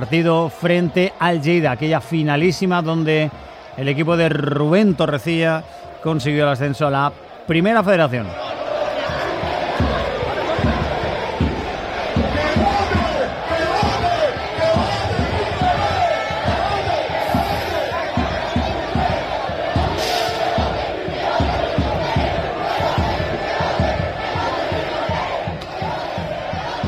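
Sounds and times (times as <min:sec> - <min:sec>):
speech: 0:00.0 - 0:08.6
large crowd of football fans chanting and roaring to welcome team bus: 0:00.0 - 0:26.8
rhythmic thumping beats, claps or drum hits: 0:08.3 - 0:26.8.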